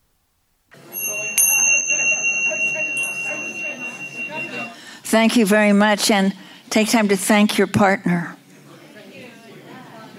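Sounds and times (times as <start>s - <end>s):
closing bell ringing with a sustained high tone: 0.8s - 5.0s
chatter of many participants talking: 0.8s - 10.1s
speech: 5.1s - 8.4s.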